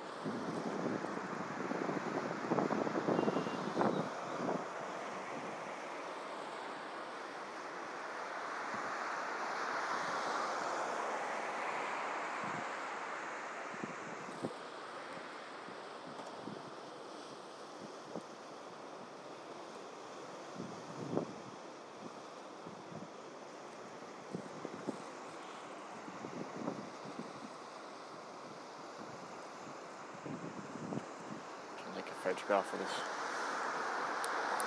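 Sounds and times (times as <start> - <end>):
wind noise: 0.0 - 5.7, 13.6 - 14.6, 20.6 - 23.2, 24.3 - 25.1, 25.9 - 27.6, 28.4 - 34.6
tidal water surging through the piers of a bridge: 0.0 - 34.6
speech: 0.2 - 0.7, 32.5 - 33.1.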